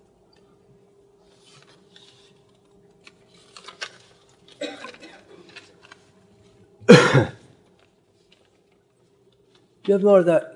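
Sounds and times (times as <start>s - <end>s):
faint steady hum in a quiet room: 0.0s - 10.5s
person clearing throat: 4.6s - 5.4s, 6.9s - 7.5s
person coughing: 4.6s - 5.4s, 6.9s - 7.5s
speech: 7.2s - 7.4s, 9.9s - 10.5s.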